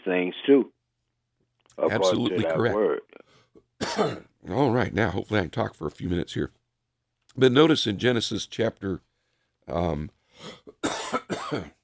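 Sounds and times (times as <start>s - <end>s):
speech: 0.0s - 0.8s, 1.8s - 6.6s, 7.4s - 9.1s, 9.7s - 11.8s
person coughing harshly: 3.8s - 4.3s, 10.5s - 11.8s.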